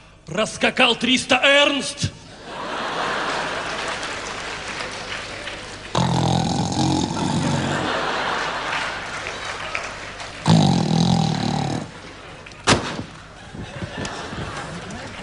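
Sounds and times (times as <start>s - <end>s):
steady noisy background: 0.0s - 15.2s
speech: 0.2s - 2.2s
laughter: 2.3s - 6.0s, 6.8s - 10.5s, 11.3s - 15.2s
woman snoring while dozing off: 6.0s - 7.9s, 10.5s - 11.9s.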